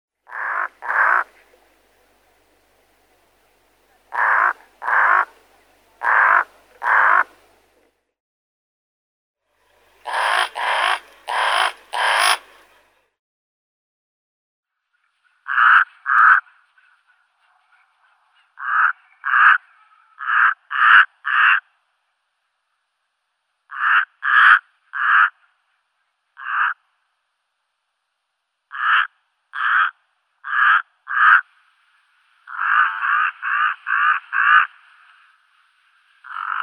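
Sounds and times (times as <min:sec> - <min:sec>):
desert raven Corvus ruficollis: 0:00.2 - 0:02.5, 0:04.0 - 0:07.5, 0:09.9 - 0:12.8, 0:15.3 - 0:21.8, 0:23.7 - 0:25.6, 0:26.4 - 0:27.0, 0:28.7 - 0:31.7, 0:32.4 - 0:36.6.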